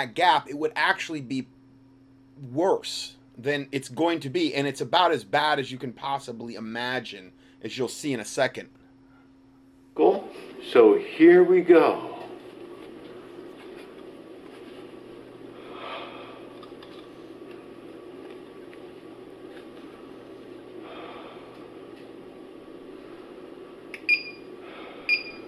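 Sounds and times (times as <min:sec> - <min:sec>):
speech: 0:00.0 - 0:01.6, 0:02.4 - 0:08.8, 0:10.0 - 0:12.1
high electronic monitor alarm beeps: 0:24.0 - 0:25.4.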